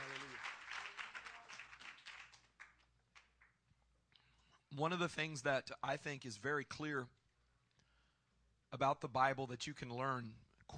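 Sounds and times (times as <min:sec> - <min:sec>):
congregation clapping their hands: 0:00.0 - 0:03.6
speech: 0:04.8 - 0:07.2, 0:08.7 - 0:10.7.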